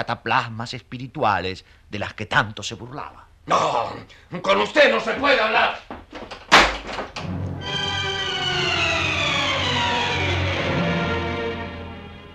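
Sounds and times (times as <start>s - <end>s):
speech: 0.0s - 6.4s
door slamming shut: 6.2s - 10.7s
wailing siren-like tone falling in pitch: 7.6s - 12.1s.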